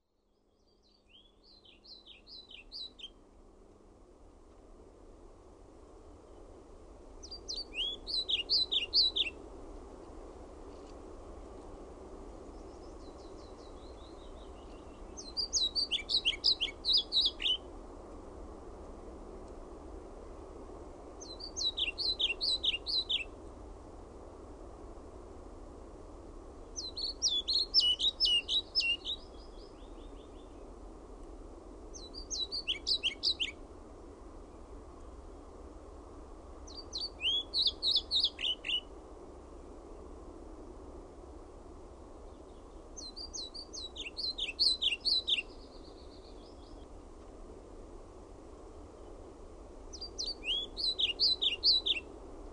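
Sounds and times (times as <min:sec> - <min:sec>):
pied flycatcher singing: 0:00.0 - 0:03.2, 0:07.2 - 0:09.4, 0:12.5 - 0:17.7, 0:21.2 - 0:23.3, 0:26.8 - 0:30.6, 0:32.0 - 0:33.6, 0:36.7 - 0:38.9, 0:42.3 - 0:46.9, 0:49.9 - 0:52.1.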